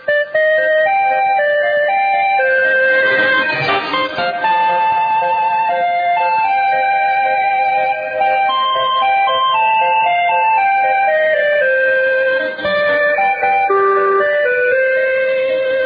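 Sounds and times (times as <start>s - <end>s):
Swedish international radio station interval signal melody: 0.0s - 15.8s.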